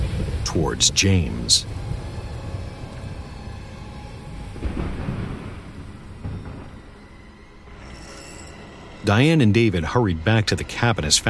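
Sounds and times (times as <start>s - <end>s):
light rain: 0.0s - 7.6s
deep rolling thunder from a lightning strike: 0.0s - 7.7s
speech: 0.5s - 1.9s, 9.1s - 11.2s.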